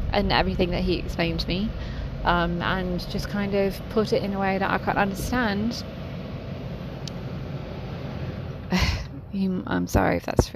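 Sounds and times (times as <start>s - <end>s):
air conditioning running loudly: 0.0s - 10.5s
speech: 0.1s - 6.0s, 9.4s - 10.5s
short breathy burst of noise: 1.7s - 4.0s, 5.8s - 9.3s.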